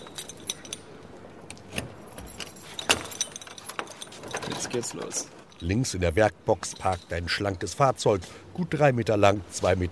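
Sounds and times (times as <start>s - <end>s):
keys jangling while unlocking a door: 0.0s - 5.7s
speech: 4.7s - 9.9s.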